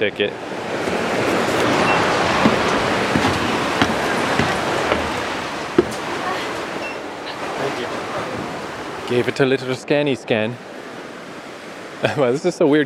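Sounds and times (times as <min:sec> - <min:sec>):
speech: 0:00.0 - 0:00.9, 0:09.1 - 0:10.7, 0:12.0 - 0:12.8
steady broad roar of rushing water: 0:00.0 - 0:12.8.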